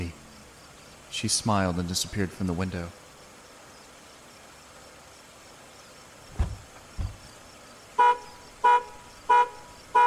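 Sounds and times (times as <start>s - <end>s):
speech: 1.2s - 3.0s
low thuds: 6.3s - 7.4s
car alarm honking with short harmonic blasts: 8.0s - 10.0s.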